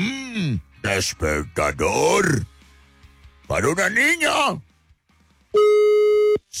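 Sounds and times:
speech: 0:00.0 - 0:02.5, 0:03.5 - 0:04.7, 0:05.5 - 0:05.9
telephone line tone as a wake-up call is dialed: 0:05.6 - 0:06.5.

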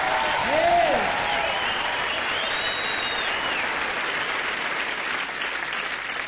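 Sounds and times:
cheering voices: 0:00.0 - 0:06.2
loud sustained applause from a large crowd: 0:00.0 - 0:06.2
whistles: 0:01.3 - 0:03.7.

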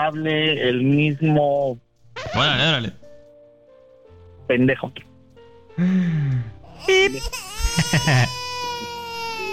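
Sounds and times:
speech: 0:00.0 - 0:03.0, 0:04.5 - 0:05.1, 0:05.8 - 0:08.4
person crying and sobbing: 0:05.8 - 0:09.5.

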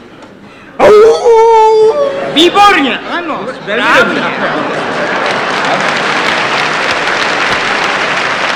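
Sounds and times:
person imitating a jackal howl: 0:00.8 - 0:02.3
speech: 0:02.4 - 0:05.0
laughter: 0:03.1 - 0:08.4.

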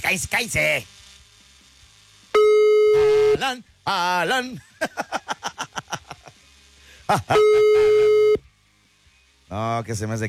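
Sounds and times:
speech: 0:00.0 - 0:01.0, 0:03.0 - 0:05.1, 0:07.1 - 0:08.2, 0:09.5 - 0:10.2
phone call electronic ringback tone on a redialled number: 0:02.4 - 0:03.5, 0:07.2 - 0:08.5
laughter: 0:04.5 - 0:06.4, 0:07.0 - 0:07.5.

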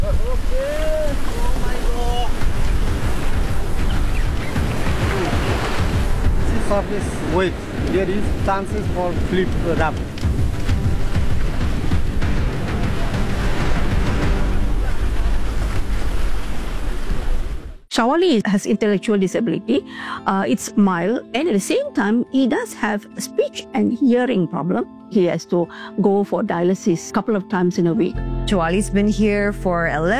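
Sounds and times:
rough choppy water with large waves and fast current roaring: 0:00.0 - 0:17.8
wind buffeting the microphone: 0:00.0 - 0:17.8
rain falling on rough water: 0:00.3 - 0:17.6
speech: 0:06.8 - 0:10.2, 0:18.0 - 0:30.1.

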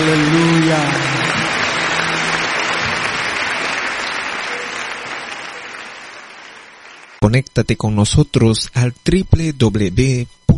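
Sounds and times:
crowd applauding to honour someone at a gathering: 0:00.0 - 0:07.2
speech: 0:07.3 - 0:10.4.

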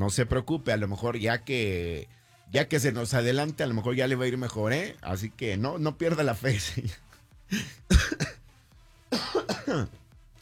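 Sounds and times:
speech: 0:00.0 - 0:08.4, 0:09.1 - 0:10.0
person coughing harshly: 0:07.5 - 0:08.4, 0:09.1 - 0:10.0.

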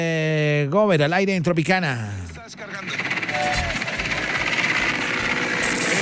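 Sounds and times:
speech: 0:00.0 - 0:03.0
helicopter rotor chop overhead: 0:01.1 - 0:05.9
helicopter engine roar: 0:02.2 - 0:05.9.

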